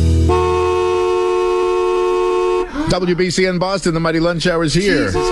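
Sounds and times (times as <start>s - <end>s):
car horns honking in traffic: 0.2s - 3.0s, 4.8s - 5.3s
speech: 3.0s - 5.3s.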